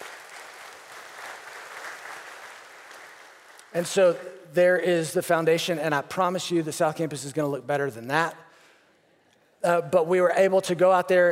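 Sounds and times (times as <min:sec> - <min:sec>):
audience applause in a room: 0:00.0 - 0:03.7
speech: 0:03.7 - 0:08.4, 0:09.6 - 0:11.3.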